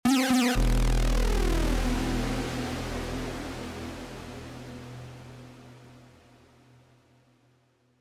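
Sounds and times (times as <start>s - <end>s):
huge synth lead: 0.0s - 3.9s.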